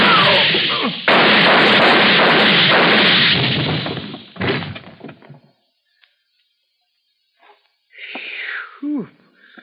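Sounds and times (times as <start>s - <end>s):
gunshots from a gun held: 0.0s - 4.9s.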